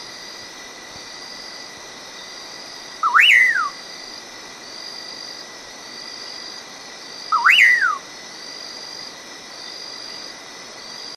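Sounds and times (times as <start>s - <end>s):
faint high hum: 0.0s - 11.1s
common pauraque whistled song with upward sweeps and falling slurs: 3.0s - 3.8s, 7.3s - 8.0s.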